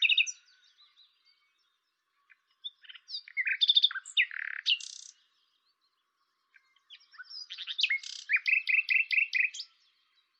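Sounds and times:
common nightingale Luscinia megarhynchos singing: 0.0s - 10.3s.

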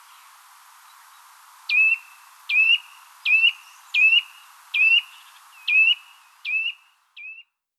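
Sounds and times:
Sitta europaea Eurasian nuthatch piping whistled calls: 1.7s - 7.6s.

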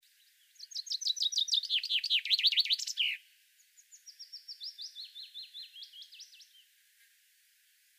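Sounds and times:
common chaffinch Fringilla coelebs song: 0.0s - 6.8s.

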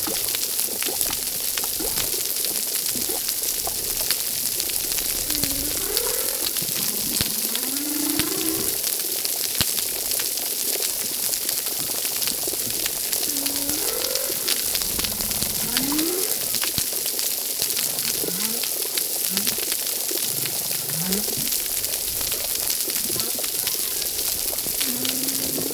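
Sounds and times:
crackling water noise at a reef: 0.0s - 25.7s
humpback whale singing at a reef: 4.9s - 8.8s, 12.6s - 16.8s, 17.7s - 25.7s.

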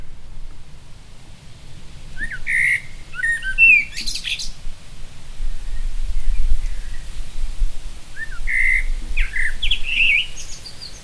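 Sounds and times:
low steady rumble: 0.0s - 11.0s
common blackbird Turdus merula fluted warbling song: 2.1s - 4.7s, 5.4s - 11.0s.

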